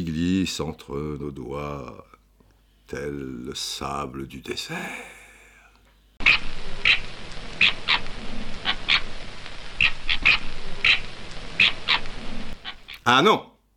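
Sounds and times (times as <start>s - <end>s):
speech: 0.0s - 2.2s, 2.9s - 5.1s, 13.0s - 13.5s
fennec fox giving shrill high-pitched yips: 6.2s - 9.2s, 9.8s - 13.0s.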